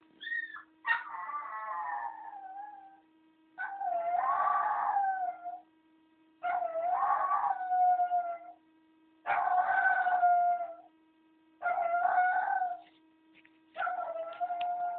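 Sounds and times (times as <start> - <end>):
howling: 0.2 - 3.0, 3.6 - 5.7, 6.4 - 8.6, 9.3 - 10.9, 11.6 - 12.9, 13.8 - 14.9.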